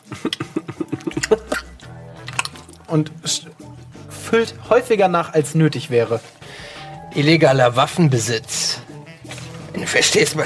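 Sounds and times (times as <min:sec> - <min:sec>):
laughter: 0:00.0 - 0:01.8
woman chewing gum: 0:00.0 - 0:02.9
speech: 0:02.9 - 0:06.4, 0:07.1 - 0:08.6, 0:09.9 - 0:10.4.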